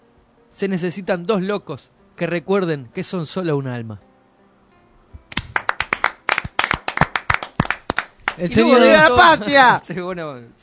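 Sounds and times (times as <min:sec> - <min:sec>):
speech: 0:00.5 - 0:04.1, 0:08.4 - 0:10.6
applause from hands clapping at the close of a television program: 0:05.3 - 0:09.0.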